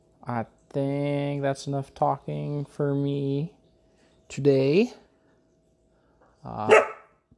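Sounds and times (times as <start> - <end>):
speech: 0.2 - 3.6, 4.3 - 5.0, 6.4 - 6.9
guard dog barking loudly into microphone at a creaking fridge: 6.7 - 7.2.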